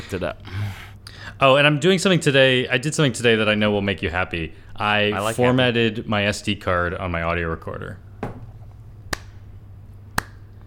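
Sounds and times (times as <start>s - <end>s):
speech: 0.0s - 0.5s, 1.4s - 8.0s
slow hand claps: 9.1s - 9.4s, 10.2s - 10.5s.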